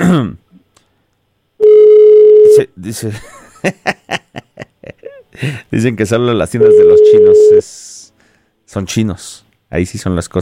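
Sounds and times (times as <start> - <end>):
telephone ringback tone: 1.6 - 2.6, 6.6 - 7.6
speech: 2.8 - 4.2, 5.4 - 8.0, 8.7 - 10.3
person chuckling: 3.2 - 5.6.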